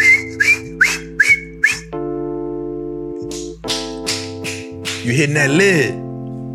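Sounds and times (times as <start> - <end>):
whistling teapot: 0.0 - 1.9
speech: 5.0 - 6.0.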